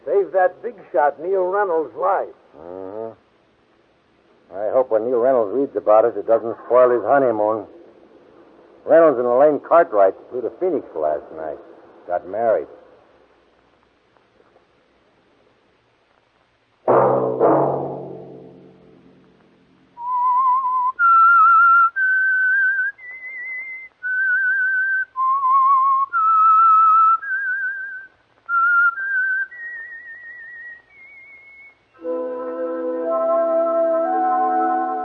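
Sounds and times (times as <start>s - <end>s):
speech: 0.2s - 3.2s, 4.5s - 7.8s, 8.8s - 12.8s
two sharp musical stabs: 16.9s - 19.3s, 32.0s - 35.0s
whistled theme tune melody: 20.0s - 35.0s
full orchestral chord: 32.0s - 35.0s.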